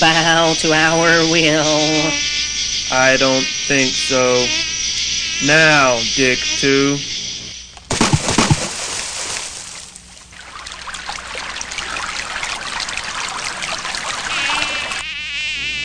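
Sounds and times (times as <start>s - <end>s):
speech: 0.0s - 4.7s, 5.4s - 7.2s
swarm of mosquitoes buzzing: 0.0s - 7.8s, 12.7s - 15.8s
water splashing: 7.8s - 15.0s
faint water trickle: 8.8s - 15.0s.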